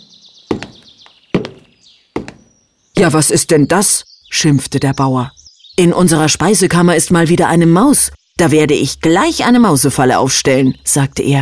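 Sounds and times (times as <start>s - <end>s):
heavy thudding footsteps of a farmer approaching his pantry: 0.5s - 2.6s
speech: 3.0s - 11.3s.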